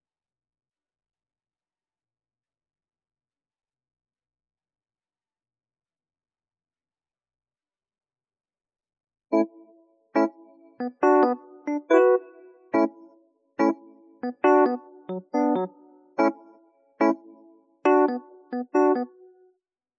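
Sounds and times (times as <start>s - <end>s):
electric piano music at home: 10.2s - 13.0s, 13.6s - 19.4s.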